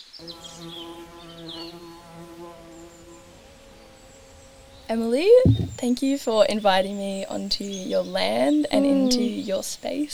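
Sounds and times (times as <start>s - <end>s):
speech: 0.0s - 0.8s, 4.9s - 10.1s
swarm of bees buzzing: 5.4s - 5.8s, 8.7s - 9.6s.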